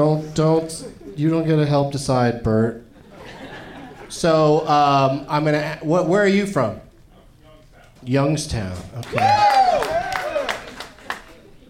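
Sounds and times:
speech: 0.0s - 2.8s, 4.1s - 6.8s, 8.0s - 9.9s
laughter: 2.9s - 4.6s
people clapping: 8.8s - 11.6s
small live crowd cheering and whooping: 9.0s - 11.5s.

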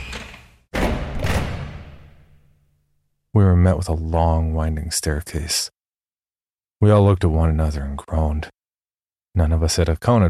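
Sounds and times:
massive thick old wooden door with a heavy old lock screeching open: 0.0s - 2.2s
speech: 3.4s - 5.8s, 6.8s - 8.6s, 9.3s - 10.2s.

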